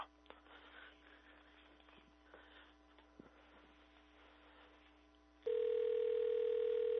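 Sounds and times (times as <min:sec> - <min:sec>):
telephone keypad tones: 0:05.5 - 0:06.9.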